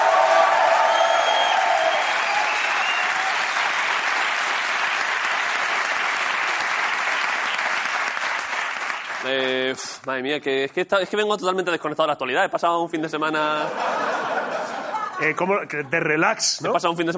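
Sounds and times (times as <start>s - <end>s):
faint cheers: 0.0s - 3.7s
audience applauding: 0.0s - 9.5s
speech: 9.7s - 14.1s, 15.2s - 17.1s
laughter: 13.5s - 15.9s.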